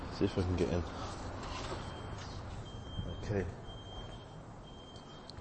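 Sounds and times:
speech: 0.2s - 1.2s, 3.3s - 3.6s
alarm beeping in high thin tones: 1.8s - 5.3s.

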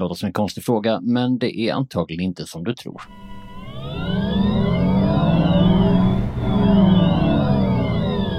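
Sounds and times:
speech: 0.0s - 3.3s
Volkswagen ID3 electric car motor whining accelerating and braking: 3.1s - 8.3s.

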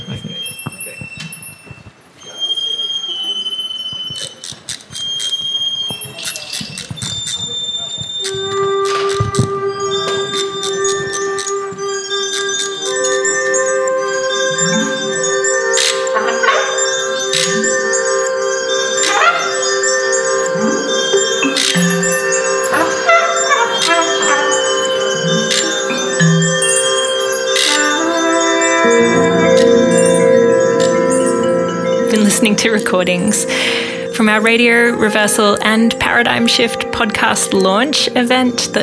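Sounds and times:
ringing bell-like tones: 0.0s - 38.8s
song playing: 8.3s - 38.8s
held drone: 13.3s - 35.1s
speech: 32.6s - 38.8s.

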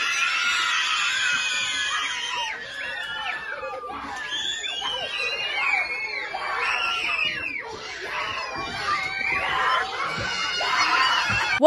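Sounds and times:
large group of schoolchildren screaming and shrieking in celebration: 0.0s - 11.6s.

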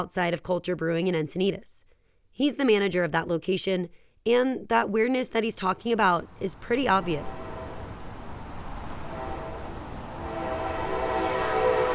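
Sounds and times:
speech: 0.0s - 7.6s
train rumbling past with low roar: 6.3s - 11.9s
sustained horn-like train tones: 7.2s - 11.9s.

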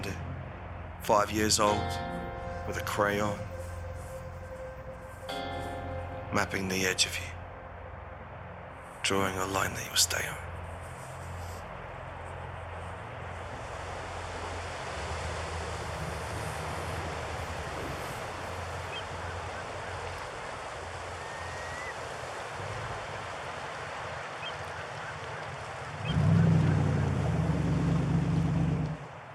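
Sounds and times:
Atlantic Ocean surf off Long Island: 0.0s - 29.3s
speech: 1.0s - 3.5s, 6.3s - 7.3s, 9.1s - 10.5s
larger ocean wave rolling in with deep rumble: 13.1s - 29.3s.

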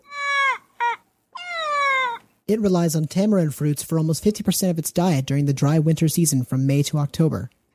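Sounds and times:
Indri lemur wailing cries: 0.0s - 2.2s
speech: 2.5s - 7.6s.

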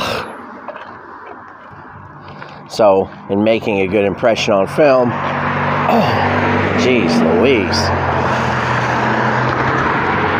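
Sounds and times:
speech: 2.7s - 5.3s, 5.9s - 8.1s
car passing by on a road with tire and engine noise: 4.8s - 10.3s.

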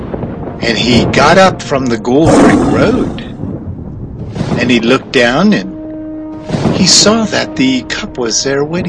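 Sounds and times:
speech: 0.6s - 3.3s, 4.6s - 5.7s, 6.8s - 8.8s
lion roaring: 2.2s - 3.4s.

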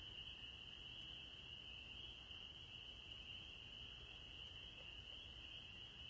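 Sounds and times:
evening chorus of spring peepers in spring: 0.0s - 6.0s.

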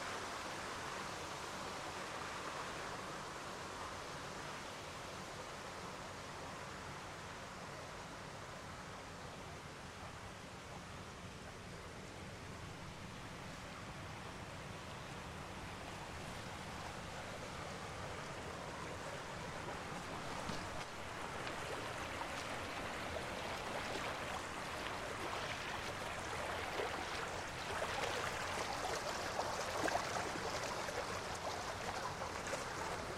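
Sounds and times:
water running through a sandstone creek bed: 0.0s - 33.1s
water splashing and gurgling in a sandstone creek: 18.5s - 33.1s.

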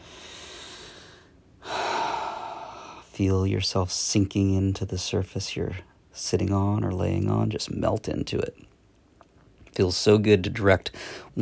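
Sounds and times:
long deep breath during a guided relaxation: 0.0s - 3.0s, 10.9s - 11.3s
speech: 3.2s - 8.7s, 9.8s - 11.4s.

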